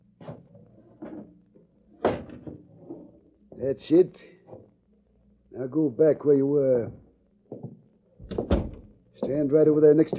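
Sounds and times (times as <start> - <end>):
speech: 3.6 - 4.3, 5.6 - 7.0, 9.3 - 10.1
hollow wooden knocks of a window being pushed shut: 8.2 - 8.8.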